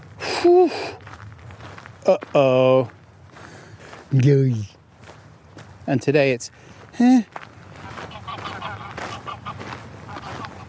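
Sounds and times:
soft rustling outdoor noise: 0.0s - 10.6s
speech: 0.4s - 1.0s, 2.0s - 3.0s, 4.1s - 4.7s, 5.9s - 7.4s
goose honking: 7.7s - 10.6s.

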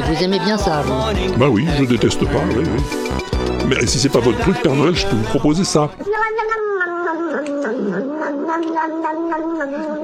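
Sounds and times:
speech: 0.1s - 6.7s, 7.3s - 10.0s
cat drinking milk and meowing: 6.0s - 10.0s.

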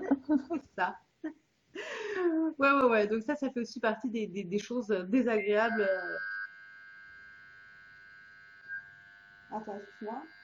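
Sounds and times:
laughter: 0.0s - 0.8s
speech: 0.3s - 6.4s, 9.5s - 10.4s
electronic phone tone: 5.3s - 6.6s.

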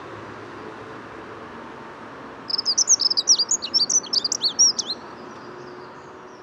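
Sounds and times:
faint traffic rumble: 0.0s - 6.4s
dunnock singing at the edge of the Bois de Vincennes: 2.5s - 5.0s.

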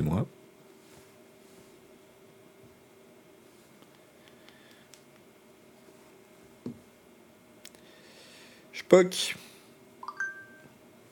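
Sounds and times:
speech: 0.0s - 0.4s, 8.8s - 9.4s
breathy hiss: 7.7s - 9.8s
mobile phone beeping: 10.0s - 10.7s.

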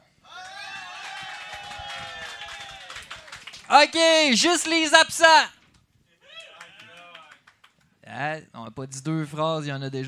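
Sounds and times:
crowd cheering: 0.2s - 5.4s, 6.2s - 7.5s
crowd clapping: 0.3s - 4.4s, 6.3s - 7.9s
speech: 3.7s - 5.6s, 8.2s - 10.0s.

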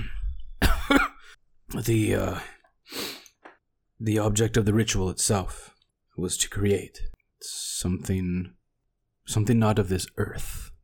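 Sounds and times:
man acting out a weak raspy cough: 0.6s - 1.4s
speech: 1.7s - 3.0s, 4.0s - 8.6s, 9.3s - 10.7s.

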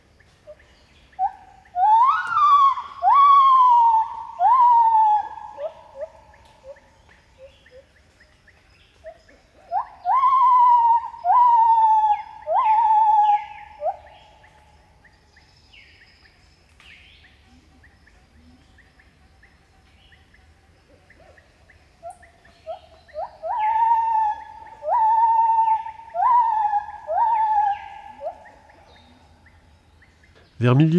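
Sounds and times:
gibbons singing rising whooping calls: 1.2s - 6.8s, 9.7s - 14.1s, 23.1s - 29.1s
speech: 30.6s - 30.9s.

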